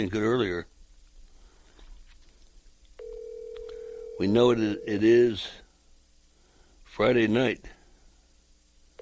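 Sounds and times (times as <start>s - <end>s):
speech: 0.0s - 0.7s, 4.2s - 5.6s, 6.9s - 7.8s
faint noise: 0.0s - 8.9s
electronic ringback tone of an outgoing phone call: 3.0s - 5.2s.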